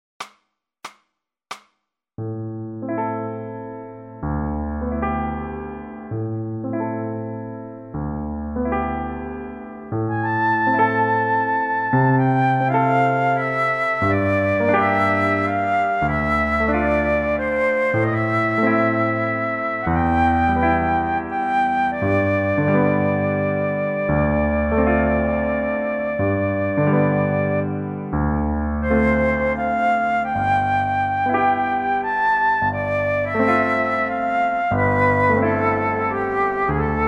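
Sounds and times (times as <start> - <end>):
piano: 2.2 - 37.0
flute solo: 10.0 - 37.0.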